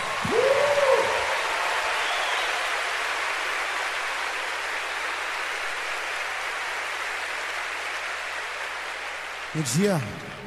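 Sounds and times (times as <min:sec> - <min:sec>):
audience applauding: 0:00.0 - 0:10.4
person whooping or cheering: 0:00.2 - 0:01.5
speech: 0:09.6 - 0:10.2.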